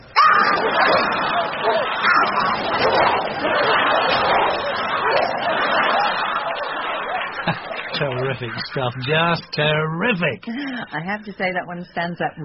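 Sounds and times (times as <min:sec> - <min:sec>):
pack of dogs barking and yapping: 0:00.1 - 0:08.0
laughter: 0:00.4 - 0:11.6
speech: 0:08.4 - 0:12.4.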